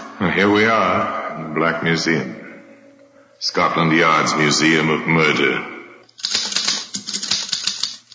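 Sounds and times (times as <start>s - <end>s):
speech: 0.3s - 2.4s, 3.4s - 5.7s
typewriter typing: 6.1s - 8.1s.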